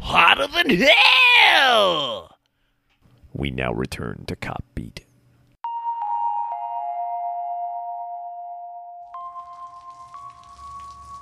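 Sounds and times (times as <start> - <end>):
speech: 0.4 - 2.3, 3.4 - 5.1
rain hiss and patter: 9.2 - 11.2.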